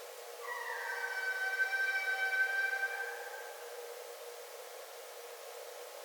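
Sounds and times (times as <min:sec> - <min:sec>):
red fox giving a long steady nasal wail: 0:00.4 - 0:04.0.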